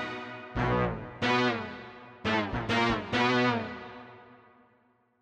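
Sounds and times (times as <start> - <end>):
synth brass falling on a Korg MSC-1S: 0.6 - 3.4.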